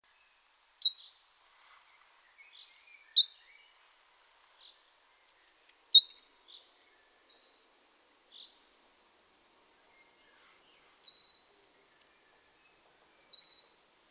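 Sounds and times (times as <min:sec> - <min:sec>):
great tit Parus major calls: 0:00.5 - 0:01.2, 0:02.4 - 0:03.8, 0:04.6 - 0:08.6, 0:09.8 - 0:14.0.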